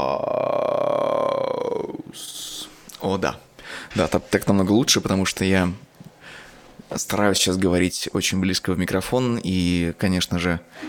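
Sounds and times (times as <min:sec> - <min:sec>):
low gravelly strohbass vocal fry drone as a voice exercise: 0:00.0 - 0:02.6
speech: 0:02.1 - 0:05.9, 0:07.0 - 0:10.8.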